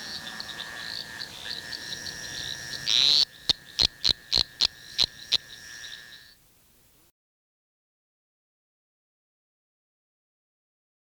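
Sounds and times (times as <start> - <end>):
constant buzzing drone: 0.0 - 7.1
eastern dwarf tree frog Litoria fallax call: 0.3 - 6.3.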